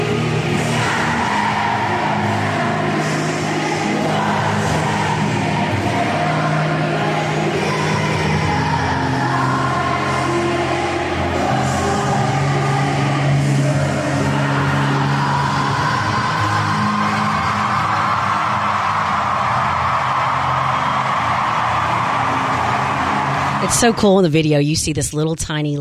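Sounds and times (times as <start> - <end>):
live acoustic music performance: 0.0 - 23.7
huge stadium crowd singing along in unison: 0.0 - 24.2
speech: 23.8 - 25.7.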